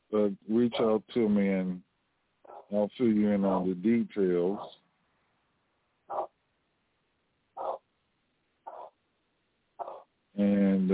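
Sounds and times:
speech: 0.1s - 1.9s, 2.7s - 4.8s
dog barking: 2.4s - 2.8s, 4.5s - 4.8s, 6.1s - 6.4s, 7.6s - 7.9s, 8.7s - 9.0s, 9.8s - 10.1s.

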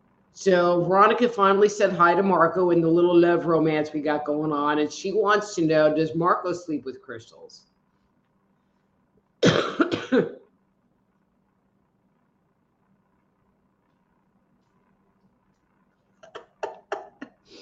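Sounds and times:
low steady hum: 0.0s - 17.6s
speech: 0.4s - 7.7s, 9.5s - 10.4s
person coughing: 9.4s - 10.4s.

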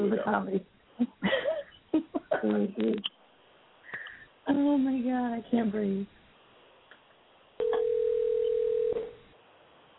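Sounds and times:
speech: 0.2s - 0.8s, 2.4s - 3.2s, 4.5s - 6.2s
electronic ring tone on a phone line: 7.6s - 9.2s.

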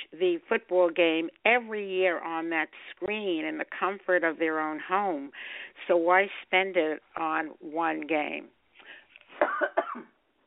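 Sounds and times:
speech: 0.1s - 8.6s, 9.4s - 10.1s
harsh coughs: 9.4s - 10.2s.

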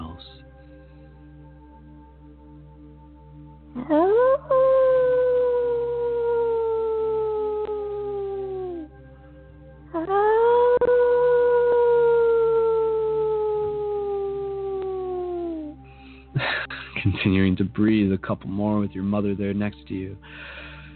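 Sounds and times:
speech: 3.8s - 4.6s, 17.3s - 20.6s
person howling like a wolf: 3.8s - 8.9s, 9.9s - 15.8s.

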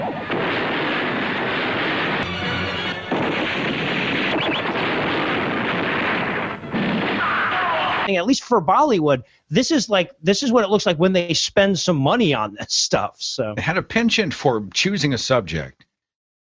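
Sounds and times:
explosions from an action movie: 0.0s - 8.1s
gunfire from an action movie: 0.0s - 8.1s
speech: 8.1s - 15.8s.

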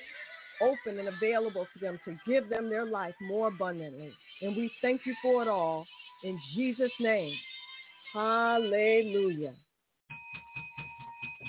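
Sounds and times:
speech: 0.6s - 7.5s, 8.1s - 9.6s
bell rung during a church service: 10.1s - 11.4s.

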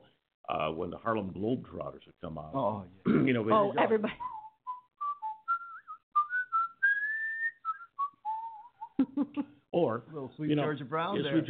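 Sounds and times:
speech: 0.5s - 4.4s, 9.2s - 11.4s
person whistling a lively melody: 4.1s - 9.0s.

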